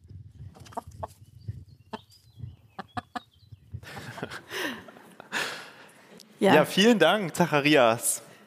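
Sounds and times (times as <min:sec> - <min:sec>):
chickens clucking and squawking in a henhouse: 0:00.1 - 0:04.6
chickens flapping: 0:00.3 - 0:04.1
laughter: 0:03.8 - 0:07.0
speech: 0:06.4 - 0:08.2.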